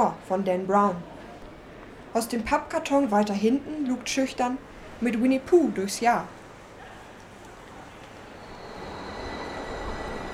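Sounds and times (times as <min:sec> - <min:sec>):
speech: 0:00.0 - 0:01.1, 0:02.1 - 0:06.4
train wheels and carriages rumbling into a station: 0:06.3 - 0:10.3
faint high whine: 0:08.1 - 0:10.3.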